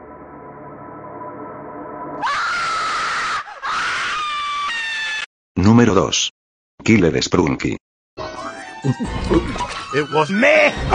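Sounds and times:
steady tonal hum: 0.0 - 2.2
loud shrill cartoon character scream: 2.2 - 5.3
speech: 5.6 - 7.8, 8.8 - 10.9.

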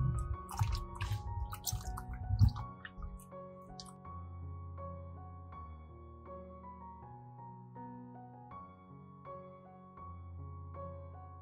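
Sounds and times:
soft instrumental music: 0.0 - 11.3
ginger rinsed under running water: 0.1 - 3.9.

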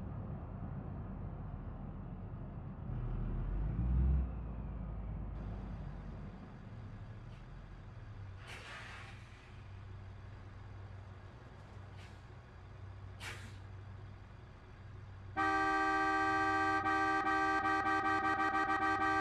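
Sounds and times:
airport shuttle bus engine rumbling: 0.0 - 19.2
bus air brakes hissing: 8.3 - 9.9, 11.8 - 14.0.

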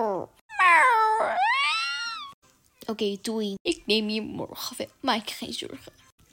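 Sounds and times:
cat meowing: 0.5 - 2.4
speech: 2.9 - 6.0.

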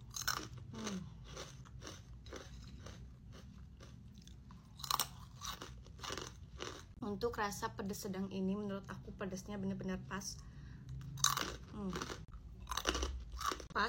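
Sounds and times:
crunching on basreng, a spicy fried fishball snack: 0.0 - 7.0, 11.1 - 13.8
speech: 7.1 - 10.5.

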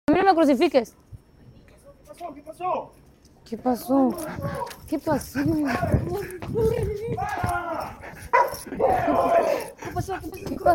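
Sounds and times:
speech: 0.3 - 1.1, 2.2 - 10.7
agitated human voices: 4.0 - 10.7
dog giving high-pitched yelps and whining barks: 8.3 - 9.6.

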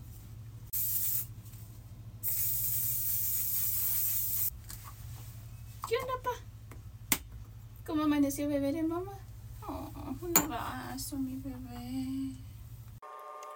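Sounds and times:
low hum: 0.0 - 13.0
makeup setting spray bottle spritzing: 0.7 - 1.3, 2.2 - 4.5
speech: 7.9 - 9.2, 10.2 - 12.4.

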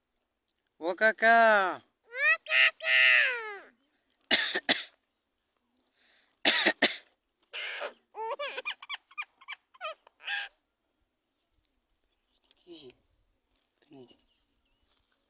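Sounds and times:
speech: 0.8 - 1.9
common myna calling: 2.0 - 3.9, 7.5 - 10.6.

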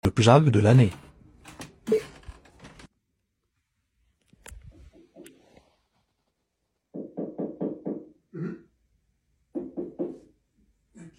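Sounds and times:
speech: 0.1 - 1.0
knocking on a door: 6.9 - 8.2, 9.6 - 10.3.

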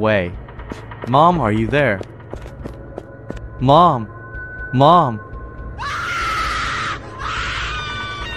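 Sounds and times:
speech: 0.0 - 2.1, 3.6 - 5.3
high-pitched scream from a basement: 5.8 - 8.3.

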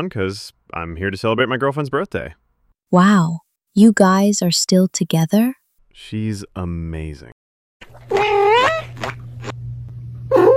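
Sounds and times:
speech: 0.0 - 8.4, 9.0 - 9.2
cat meowing: 8.1 - 8.9, 10.3 - 10.5
steady low hum: 8.9 - 10.3.

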